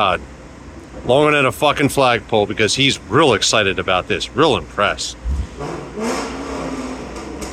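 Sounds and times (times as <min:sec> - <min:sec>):
speech: 0:00.0 - 0:00.4, 0:01.0 - 0:06.2
constant roar of road noise: 0:00.0 - 0:07.5
car with loud throaty aftermarket exhaust revving hard at a car wash: 0:04.6 - 0:07.5.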